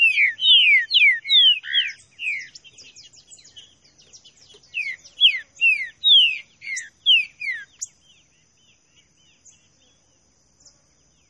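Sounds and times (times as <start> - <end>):
green-winged saltator classic song: 0.0 - 8.3.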